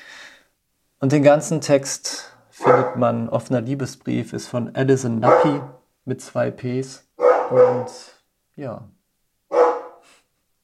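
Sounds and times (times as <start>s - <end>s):
speech: 1.0s - 9.0s
dog barking: 2.6s - 3.0s, 5.2s - 5.8s, 7.2s - 8.0s, 9.5s - 10.0s.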